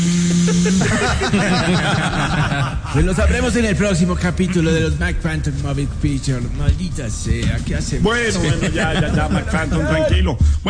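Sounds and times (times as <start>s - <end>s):
voice imitating a blender: 0.0s - 1.1s
laughter: 0.4s - 5.1s, 8.1s - 10.4s
speech: 0.6s - 10.6s.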